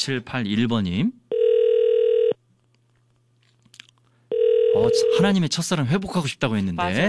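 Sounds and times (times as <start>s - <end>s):
speech: 0.0s - 1.2s, 4.8s - 7.0s
landline telephone ringing tone while a call is placed: 1.3s - 2.4s, 4.3s - 5.2s.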